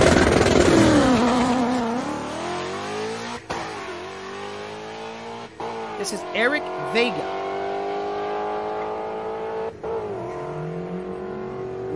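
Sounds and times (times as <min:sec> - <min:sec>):
supercharged stick-shift drag car with 100 millimeter pulley revving on two-step and launching: 0:00.0 - 0:11.9
speech: 0:06.0 - 0:07.3.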